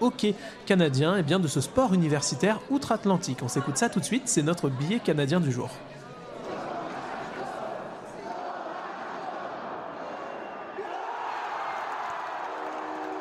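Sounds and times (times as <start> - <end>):
speech: 0.0 - 6.0
ice hockey fans cheering a goal in an arena: 6.4 - 13.1.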